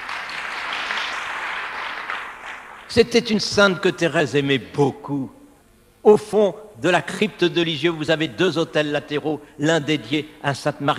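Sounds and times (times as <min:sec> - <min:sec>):
audience applause during a talk: 0:00.0 - 0:02.9
speech: 0:02.9 - 0:05.4, 0:06.0 - 0:10.9.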